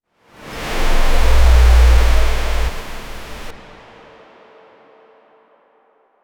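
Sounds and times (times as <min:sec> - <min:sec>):
fast swoosh: 0:00.5 - 0:03.6.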